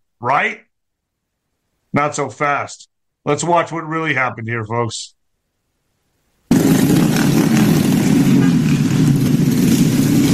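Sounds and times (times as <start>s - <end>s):
speech: 0.2s - 0.7s, 2.0s - 5.2s, 6.6s - 7.5s
small scooter and moped engines revving on a street: 6.5s - 10.3s.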